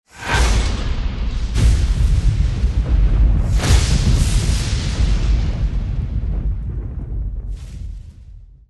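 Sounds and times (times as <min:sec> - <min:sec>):
lightning: 0:00.1 - 0:08.6.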